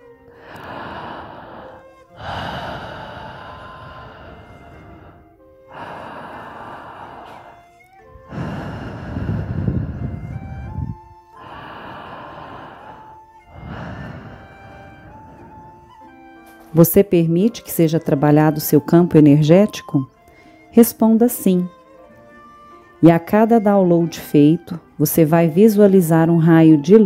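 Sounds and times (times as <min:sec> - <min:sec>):
soft sustained music: 0:00.0 - 0:27.0
slow deep breathing in and out: 0:00.3 - 0:16.7, 0:20.1 - 0:20.7
speech: 0:16.8 - 0:20.1, 0:20.8 - 0:21.8, 0:23.0 - 0:27.0.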